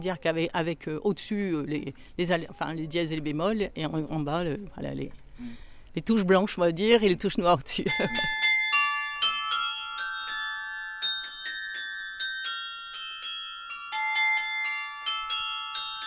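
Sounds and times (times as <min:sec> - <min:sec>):
speech: 0:00.0 - 0:08.4
carillon bells playing a melody: 0:07.8 - 0:16.0.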